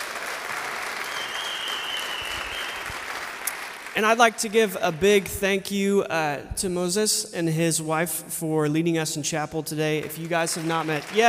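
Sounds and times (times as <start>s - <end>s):
audience applause for graduates: 0.0s - 5.2s, 10.0s - 11.2s
faint whistle-like tone: 1.1s - 2.9s
speech: 4.0s - 11.2s.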